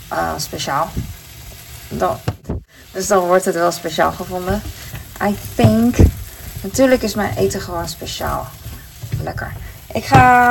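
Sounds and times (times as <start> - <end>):
avocado sizzling as it fries in a pan: 0.0 - 10.4
speech: 0.1 - 1.2, 1.9 - 8.6, 9.2 - 10.4.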